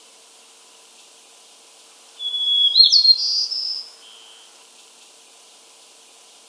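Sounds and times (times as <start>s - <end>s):
white-crowned sparrow gambelii song: 2.1s - 4.6s.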